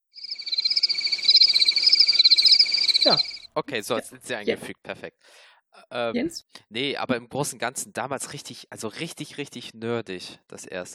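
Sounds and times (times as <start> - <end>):
crickets chirping: 0.0 - 3.5
speech: 3.0 - 10.9.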